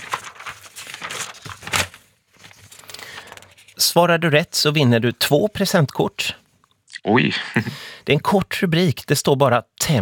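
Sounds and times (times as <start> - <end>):
paper pages rustling and flipping: 0.0 - 4.0
speech: 3.8 - 6.4, 7.0 - 10.0.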